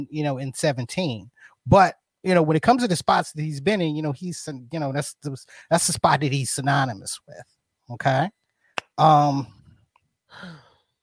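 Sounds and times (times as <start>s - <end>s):
speech: 0.0s - 8.4s, 9.0s - 9.6s, 10.3s - 10.6s
breathy exhale-like vocal sound: 10.3s - 10.8s
person gasping: 10.3s - 10.8s.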